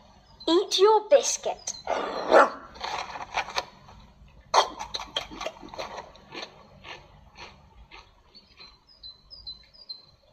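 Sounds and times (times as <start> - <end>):
faint high chirps: 0.0 - 2.3, 8.3 - 10.3
speech: 0.5 - 2.6
dog barking: 1.9 - 2.7.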